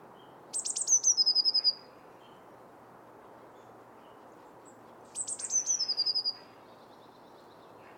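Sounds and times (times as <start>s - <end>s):
Eurasian blue tit Cyanistes caeruleus song with high notes and silvery trill: 0.1s - 2.5s, 3.5s - 7.9s.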